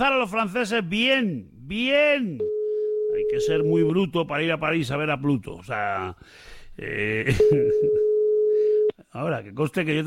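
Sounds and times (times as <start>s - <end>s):
speech: 0.0s - 8.0s, 9.1s - 10.0s
telephone ring tone of an unanswered call: 2.4s - 3.9s, 7.4s - 8.9s.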